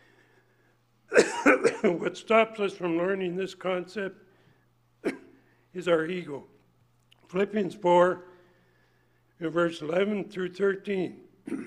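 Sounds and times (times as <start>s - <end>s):
harsh throat clearing: 1.1s - 2.0s, 5.0s - 5.4s, 11.4s - 11.6s
speech: 1.8s - 4.2s, 5.8s - 6.5s, 7.3s - 8.3s, 9.4s - 11.6s.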